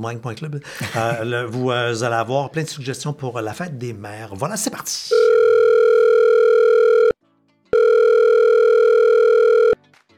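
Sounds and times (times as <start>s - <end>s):
speech: 0.0s - 5.4s
telephone line buzzing tones before a voicemail greeting: 5.3s - 7.1s, 7.8s - 9.8s.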